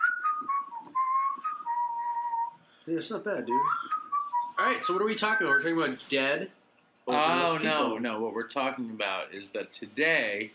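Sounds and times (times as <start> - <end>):
person whistling a tune: 0.0 - 2.6, 3.5 - 5.8
speech: 2.9 - 4.0, 4.6 - 10.5.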